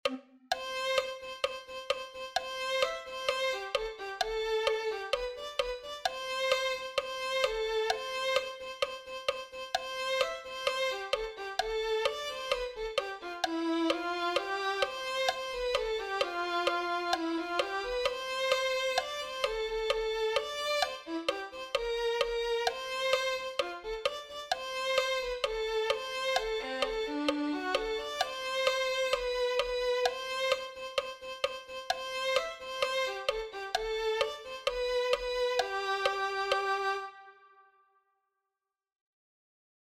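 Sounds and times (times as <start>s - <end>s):
violin: 0.0s - 37.8s.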